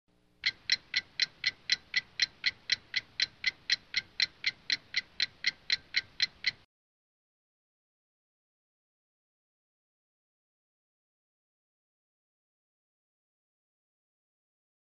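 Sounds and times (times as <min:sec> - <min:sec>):
clock ticking: 0:00.4 - 0:06.7.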